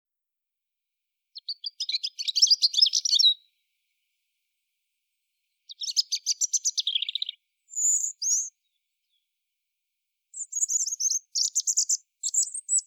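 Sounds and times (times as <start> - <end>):
European robin singing: 1.3 - 4.0, 5.4 - 9.3, 10.3 - 12.8.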